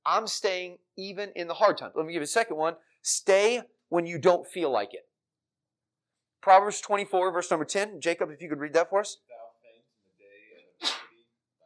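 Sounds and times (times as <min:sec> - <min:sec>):
speech: 0:00.0 - 0:05.1, 0:06.4 - 0:09.4
sneeze: 0:10.8 - 0:11.2.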